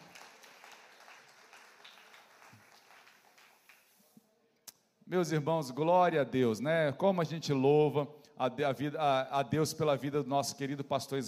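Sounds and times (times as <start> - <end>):
crowd applauding: 0.0 - 4.0
speech: 5.1 - 11.2.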